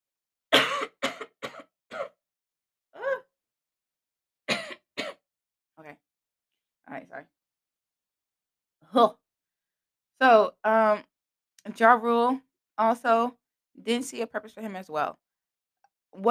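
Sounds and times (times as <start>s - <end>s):
harsh dry coughing and throaty hacks: 0.5s - 2.2s, 4.5s - 5.2s
speech: 6.9s - 7.4s, 8.9s - 9.2s, 10.2s - 15.2s, 16.1s - 16.3s.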